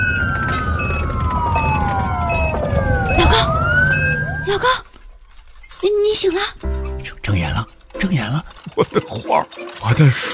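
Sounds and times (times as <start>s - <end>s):
ambulance siren wailing: 0.0s - 4.8s
traffic noise: 0.0s - 4.9s
speech: 6.2s - 6.6s, 7.4s - 10.3s.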